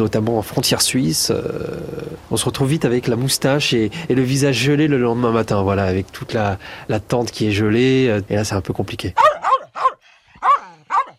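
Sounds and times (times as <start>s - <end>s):
speech: 0.0s - 9.4s
small poodle barking sharply: 9.2s - 11.1s.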